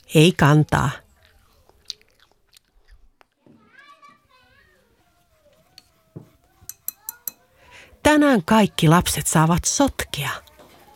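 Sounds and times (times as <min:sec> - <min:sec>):
speech: 0:00.1 - 0:01.0, 0:08.0 - 0:10.4
someone biting and chewing an apple: 0:01.1 - 0:03.4
children talking and playing quietly: 0:03.3 - 0:10.9.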